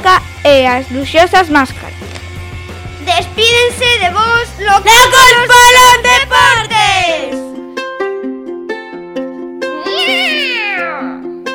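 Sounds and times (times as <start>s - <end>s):
speech: 0.0s - 2.0s, 3.1s - 7.4s
bouncy repeating musical backing: 3.5s - 11.3s
cat meowing: 9.8s - 11.2s.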